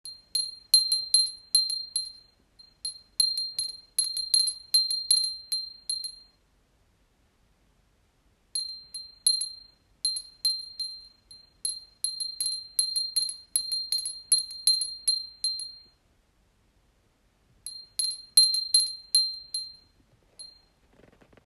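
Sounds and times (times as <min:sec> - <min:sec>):
wind bell ringing: 0:00.1 - 0:06.4, 0:08.6 - 0:15.9, 0:17.7 - 0:20.7.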